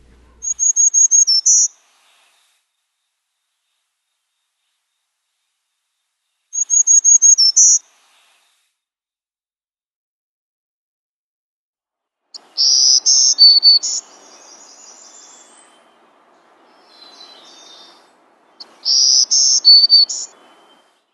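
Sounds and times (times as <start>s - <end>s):
black-throated green warbler singing high buzzy phrases: 0.0s - 1.7s, 6.6s - 7.8s, 12.4s - 21.1s
faint hiss: 0.0s - 8.9s, 12.4s - 21.1s.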